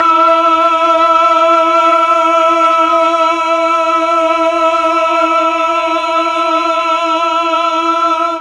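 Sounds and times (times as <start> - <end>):
mellotron eight-voice choir note: 0.0 - 8.4.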